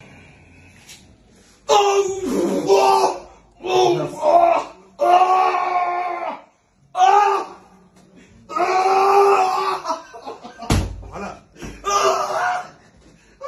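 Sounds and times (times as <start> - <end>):
person screaming during massage: 1.7 - 7.6, 8.5 - 9.9, 11.8 - 12.8.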